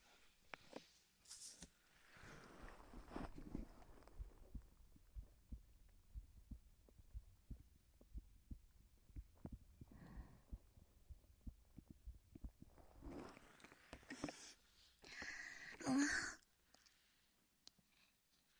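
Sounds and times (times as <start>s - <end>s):
faint rustling of fabric: 1.4s - 5.2s
soft heartbeat heard against a woman's chest: 3.0s - 13.1s
brief breathy sigh: 9.9s - 10.6s, 15.0s - 16.4s.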